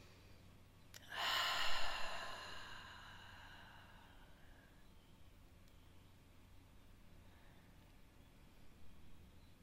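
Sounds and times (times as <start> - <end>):
long deep breath in: 1.0 - 4.8.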